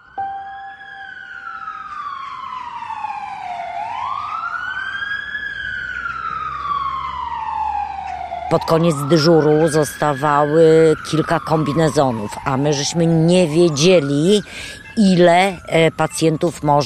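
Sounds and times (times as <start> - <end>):
ambulance siren wailing as ambulance arrives to take a patient to hospital: 0.0 - 16.8
low traffic rumble: 0.0 - 16.8
speech: 8.5 - 16.8.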